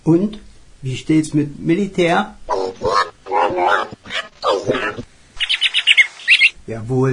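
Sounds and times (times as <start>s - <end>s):
speech: 0.0s - 2.4s, 6.7s - 7.1s
parrot squawking in harsh raspy bursts: 2.5s - 6.6s
parrot's shrill high-pitched chirps: 4.4s - 6.6s.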